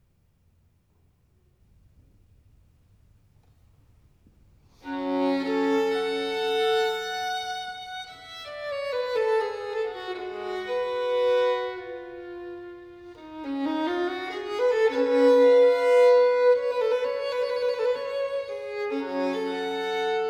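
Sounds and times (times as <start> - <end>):
solo violin sonata in G minor: 4.7 - 20.2.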